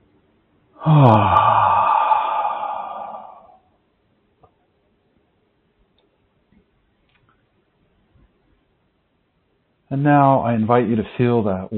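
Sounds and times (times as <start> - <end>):
speech: 0.8 - 1.4, 10.0 - 11.7
deep breath exhaled during a guided relaxation: 0.8 - 3.6.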